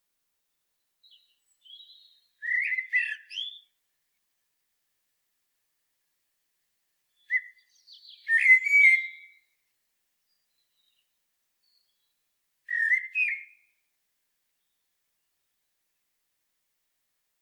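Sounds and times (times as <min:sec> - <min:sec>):
common blackbird song: 0:00.5 - 0:04.5, 0:07.0 - 0:16.0.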